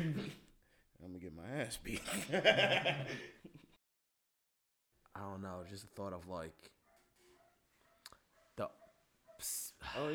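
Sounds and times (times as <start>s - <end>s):
speech: 1.0s - 3.6s, 5.2s - 6.8s, 8.6s - 8.8s, 9.4s - 10.1s
laughter: 2.0s - 3.8s
dog yelping and barking: 6.7s - 9.6s.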